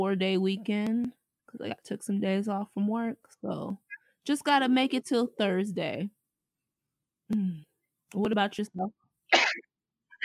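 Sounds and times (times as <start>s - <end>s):
speech: 0.0s - 6.2s, 7.3s - 9.4s
person with allergies sneezing: 9.4s - 9.6s.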